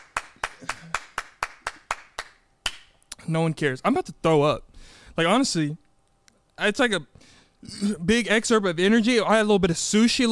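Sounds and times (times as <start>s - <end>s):
hand clapping in a round of applause: 0.0s - 3.0s
speech: 3.3s - 5.8s, 6.6s - 10.3s.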